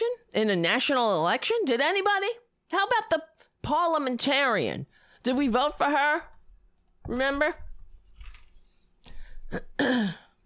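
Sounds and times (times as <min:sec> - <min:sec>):
speech: 0:00.4 - 0:06.3, 0:07.1 - 0:07.6, 0:09.5 - 0:10.2
person clearing throat: 0:09.5 - 0:10.4.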